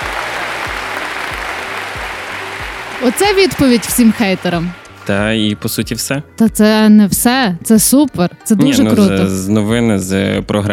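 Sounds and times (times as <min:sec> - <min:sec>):
applause sound effect of many hands clapping: 0:00.0 - 0:05.2
speech: 0:03.0 - 0:10.7.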